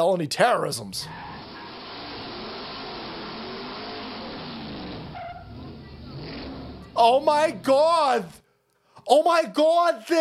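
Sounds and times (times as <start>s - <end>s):
speech: 0.0s - 1.3s, 7.0s - 8.4s, 9.0s - 10.1s
pickup truck engine roaring during a burnout: 1.0s - 8.4s
pickup truck tires screeching and skidding in a burnout: 1.0s - 8.4s.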